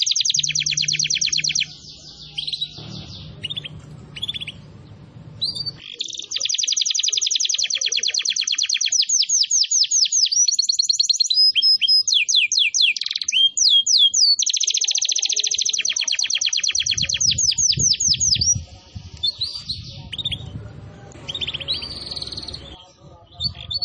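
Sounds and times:
canary singing trills and sweeping notes: 0.0s - 23.8s
low hum: 1.7s - 5.8s, 19.0s - 23.2s.

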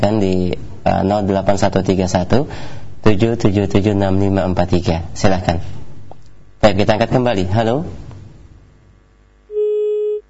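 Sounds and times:
speech: 0.0s - 5.8s, 6.6s - 8.0s
telephone busy tone after a call is cut off: 9.5s - 10.2s.

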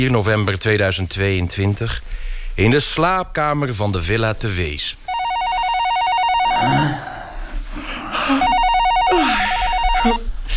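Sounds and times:
speech: 0.0s - 5.1s
telephone ringing electronically in a bedroom: 5.1s - 6.9s, 8.4s - 10.3s.

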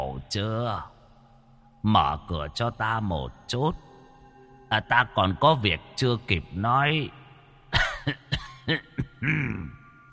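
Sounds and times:
speech: 0.3s - 1.0s, 1.8s - 3.9s, 4.7s - 7.2s, 8.0s - 9.8s
old man coughing violently outside a door: 7.7s - 9.8s.

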